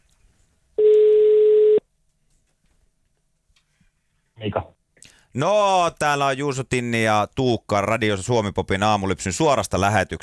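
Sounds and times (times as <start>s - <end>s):
telephone ringback tone as a call connects: 0.8s - 1.8s
speech: 4.4s - 10.2s.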